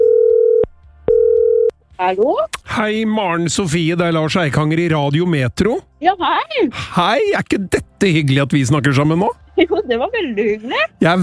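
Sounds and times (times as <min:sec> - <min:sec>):
telephone ringing tone while a call is placed to a listener: 0:00.0 - 0:01.7
speech: 0:02.0 - 0:11.2.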